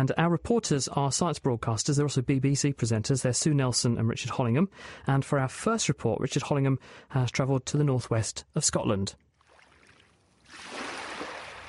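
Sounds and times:
speech: 0.0 - 9.3
waves lapping over pebble beach stones: 9.4 - 11.6.

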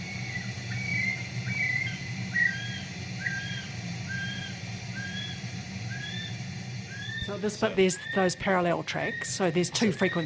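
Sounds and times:
constant hiss of rain or noise: 0.0 - 10.2
male kiwi high shrill whistling call: 0.1 - 6.3, 6.9 - 8.4, 10.0 - 10.2
speech: 7.3 - 10.2.

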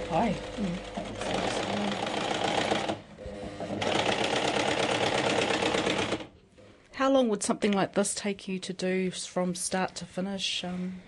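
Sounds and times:
industrial sewing machine running: 0.0 - 3.0, 3.7 - 6.3
speech: 0.1 - 1.9, 7.1 - 11.0.

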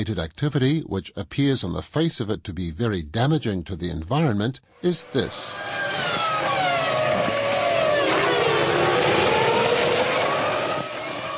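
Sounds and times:
speech: 0.0 - 6.0
Formula One race car engine screaming: 4.8 - 11.3.

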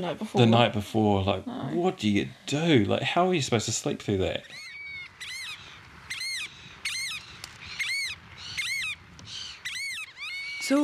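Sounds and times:
speech: 0.0 - 4.6
faint hiss: 0.0 - 9.6
variable oystercatcher giving shrill piping calls: 4.4 - 10.8.

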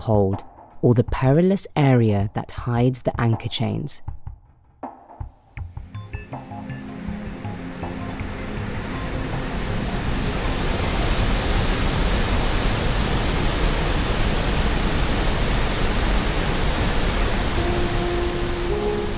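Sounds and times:
speech: 0.0 - 4.2
roaring ocean waves heard from a ship's rudder stock: 7.1 - 19.1.

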